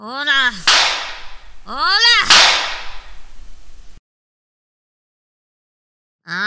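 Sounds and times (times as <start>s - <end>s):
sharp slap to the face: 0.4s - 4.0s.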